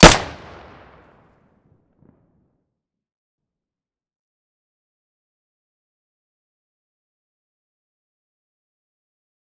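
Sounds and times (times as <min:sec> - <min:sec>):
PM pistol muzzle gunshot: 0:00.0 - 0:01.0.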